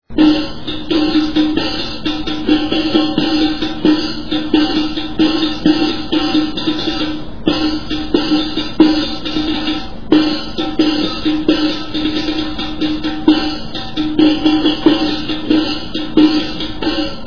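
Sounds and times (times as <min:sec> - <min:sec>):
riq: 0:00.0 - 0:17.2.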